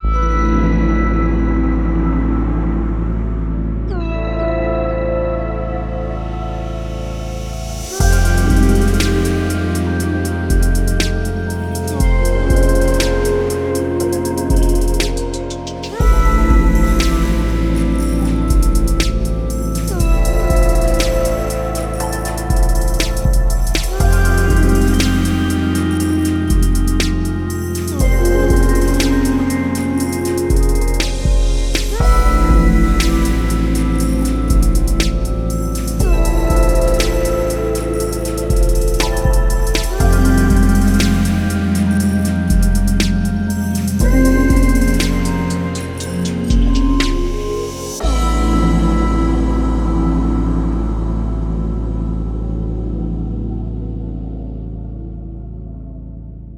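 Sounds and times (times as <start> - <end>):
musical chords: 0.0 - 53.4.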